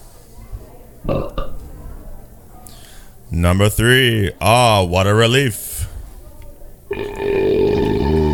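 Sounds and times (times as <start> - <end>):
speech: 1.0 - 1.4, 3.4 - 5.7
loud deep rumbling belch: 1.1 - 1.6, 6.9 - 8.3.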